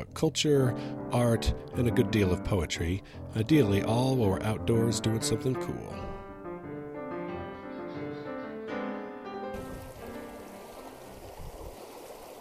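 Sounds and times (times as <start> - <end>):
tonal music: 0.0 - 11.2
speech: 0.1 - 6.1
small mountain river stream babbling: 9.6 - 12.3.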